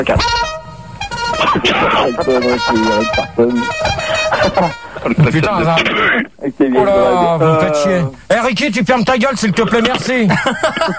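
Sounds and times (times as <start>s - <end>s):
speech: 0.0s - 0.5s, 1.4s - 10.9s
loud brassy horn honking: 0.0s - 6.2s
voice-like burst: 1.3s - 6.5s
laughter: 1.4s - 2.7s, 4.0s - 5.7s, 10.1s - 10.9s.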